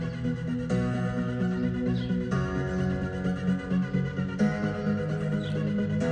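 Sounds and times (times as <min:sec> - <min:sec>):
song with sustained harmonic instruments: 0:00.0 - 0:06.0.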